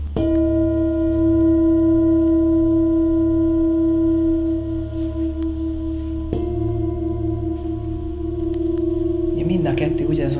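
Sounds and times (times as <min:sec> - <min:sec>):
two healing singing bowls struck and ringing: 0:00.1 - 0:10.3
person speaking: 0:09.2 - 0:10.3.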